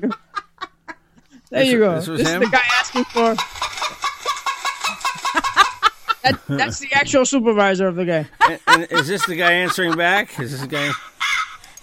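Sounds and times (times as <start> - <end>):
laughter: 0.0 - 1.0, 2.0 - 6.9, 8.4 - 11.4
speech: 1.5 - 3.8, 6.2 - 11.1
chicken clucking and squawking: 2.2 - 6.1.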